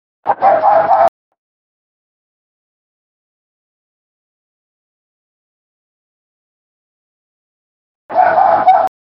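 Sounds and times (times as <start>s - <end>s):
gray fox barking: 0.3s - 1.1s, 8.1s - 8.9s.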